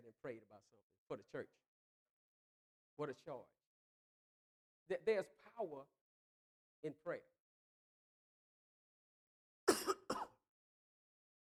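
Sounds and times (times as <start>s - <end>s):
speech: 0.1s - 1.7s, 3.0s - 3.6s, 4.9s - 6.0s, 6.8s - 7.3s
man coughing: 9.7s - 10.3s.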